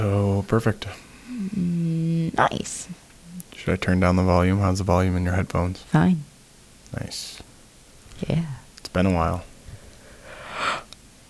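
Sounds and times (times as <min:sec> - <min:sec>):
speech: 0:00.0 - 0:01.1, 0:02.4 - 0:03.0, 0:03.6 - 0:06.3, 0:06.9 - 0:07.4, 0:08.2 - 0:09.5
person yawning: 0:01.2 - 0:01.9.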